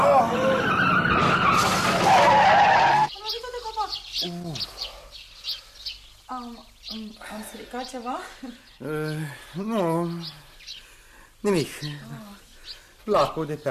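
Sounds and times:
car braking hard with loud sustained tire skid and screech: 0:00.0 - 0:03.1
speech: 0:07.5 - 0:10.4, 0:11.4 - 0:12.3, 0:13.1 - 0:13.6.

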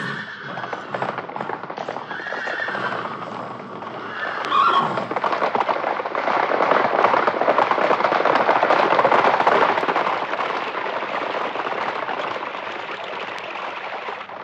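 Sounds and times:
horse neighing: 0:00.0 - 0:05.3
horses setting off at a brisk trot: 0:00.0 - 0:14.4.

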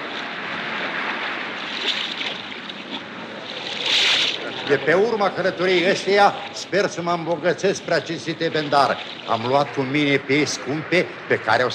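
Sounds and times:
broadband wash of water with rushing hiss: 0:00.0 - 0:11.7
speech: 0:04.7 - 0:11.7.

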